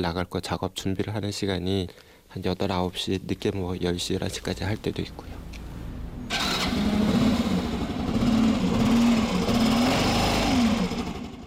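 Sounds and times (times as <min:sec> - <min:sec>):
speech: 0:00.0 - 0:05.5
mail-delivery motorcycle engine starting and idling: 0:05.0 - 0:11.4.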